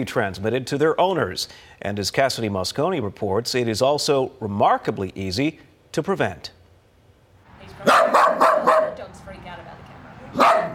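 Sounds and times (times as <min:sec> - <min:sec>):
speech: 0:00.0 - 0:06.6
five-year-old dog barking: 0:07.8 - 0:09.0, 0:10.3 - 0:10.7.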